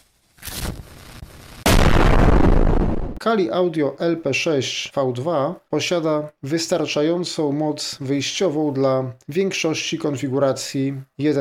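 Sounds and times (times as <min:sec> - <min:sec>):
explosion sound effect: 0:00.4 - 0:03.2
speech: 0:03.2 - 0:11.3.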